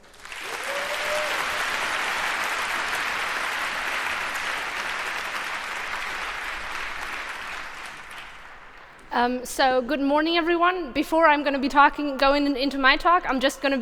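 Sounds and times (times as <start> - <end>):
sizable audience applauding: 0.0 - 9.1
person whooping: 0.4 - 2.0
speech: 9.2 - 13.7.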